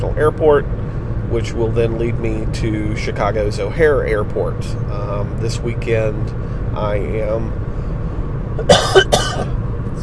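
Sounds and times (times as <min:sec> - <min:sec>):
low car engine hum: 0:00.0 - 0:10.0
speech: 0:00.1 - 0:07.8, 0:08.6 - 0:10.0
harsh coughs from a man in a car recovering from a cold: 0:08.6 - 0:09.6.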